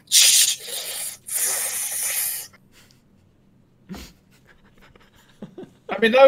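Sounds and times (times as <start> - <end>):
bong hit drawing smoke through a water pipe: 0.0 - 2.5.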